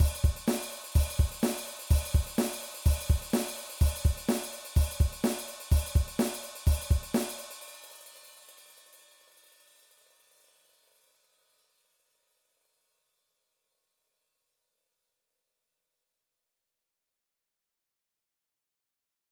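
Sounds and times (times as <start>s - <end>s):
rock drum beat: 0.0s - 7.6s.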